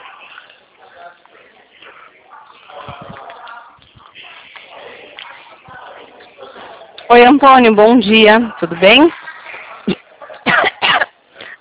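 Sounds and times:
speech: 7.1s - 9.2s
loud harsh coughs: 10.4s - 11.5s.

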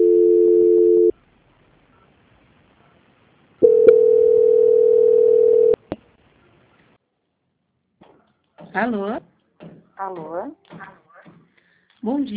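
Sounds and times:
telephone line tones during a call transfer: 0.0s - 1.1s, 3.6s - 5.8s
speech: 8.8s - 9.3s, 10.0s - 10.9s, 12.0s - 12.3s.

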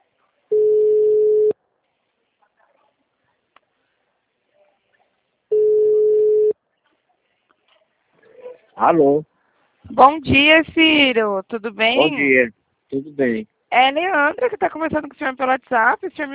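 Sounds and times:
ringback tone of an outgoing telephone call: 0.5s - 1.6s, 5.5s - 6.5s
speech: 8.8s - 9.3s, 9.9s - 16.3s.

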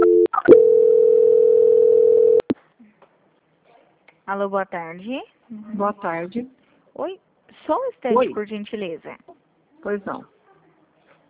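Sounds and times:
telephone line tone during a call transfer: 0.0s - 2.4s
speech: 4.3s - 10.4s.

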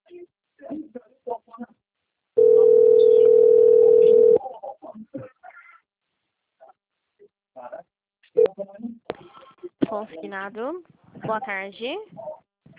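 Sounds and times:
telephone dial tone as a call connects: 2.4s - 4.4s
speech: 10.1s - 12.2s.

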